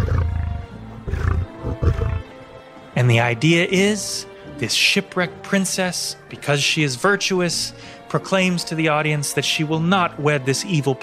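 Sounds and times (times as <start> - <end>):
800-pound male lion roaring in a large cage: 0.0 - 2.3
speech: 3.0 - 11.0.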